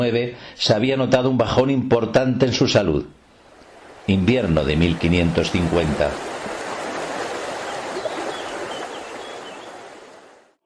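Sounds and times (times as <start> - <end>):
speech: 0.0 - 3.2, 4.0 - 6.3
flooded Genil river in Granada rushing: 3.3 - 10.5.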